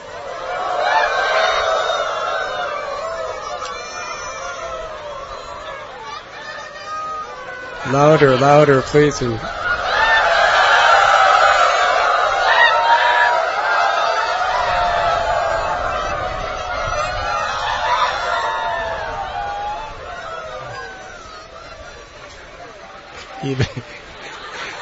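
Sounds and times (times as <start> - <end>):
crowd of men and women imitating rooster crowing: 0.0 - 22.3
laughter: 0.0 - 24.8
speech: 7.9 - 9.6.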